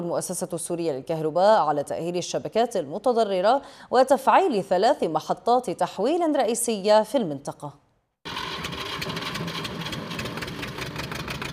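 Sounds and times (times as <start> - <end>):
speech: 0.0 - 7.8
diesel generator powering a grain-sieving workshop running at a constant idle: 8.3 - 11.5.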